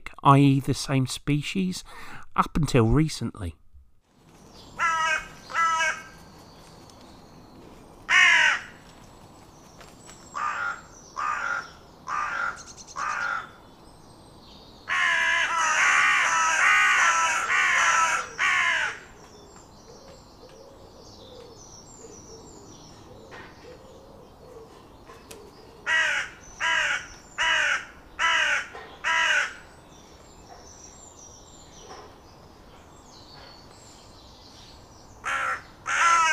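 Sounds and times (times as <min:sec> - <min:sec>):
speech: 0:00.2 - 0:03.6
carrion crow harsh cawing calls outdoors: 0:04.8 - 0:06.2, 0:08.1 - 0:08.8, 0:10.4 - 0:13.6, 0:14.9 - 0:19.2, 0:25.8 - 0:29.7, 0:35.2 - 0:36.3.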